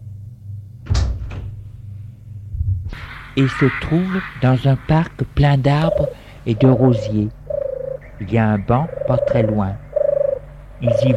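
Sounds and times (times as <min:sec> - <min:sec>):
steady low hum: 0:00.0 - 0:11.1
glazed French window opening with latch and frame clattering: 0:00.9 - 0:01.6
speech: 0:03.4 - 0:07.4, 0:08.2 - 0:09.8, 0:10.8 - 0:11.1.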